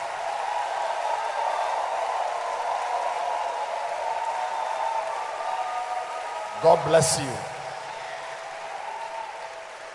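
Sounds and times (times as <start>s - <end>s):
congregation clapping: 0.0s - 9.9s
speech: 6.6s - 7.5s.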